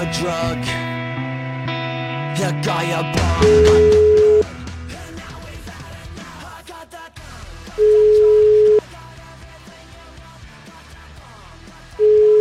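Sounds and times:
speech: 0.0s - 0.9s, 2.4s - 4.1s
ringback tone on a phone line while a call is placed: 3.4s - 4.5s, 7.8s - 8.8s, 12.0s - 12.4s.

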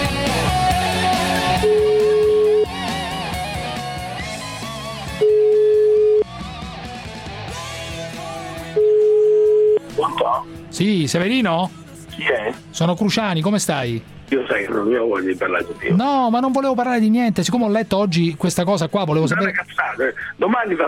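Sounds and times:
continuous music: 0.0s - 20.8s
telephone ringback tone for an outgoing call: 1.6s - 2.9s, 5.1s - 6.4s, 8.7s - 9.8s
speech: 10.8s - 20.8s.

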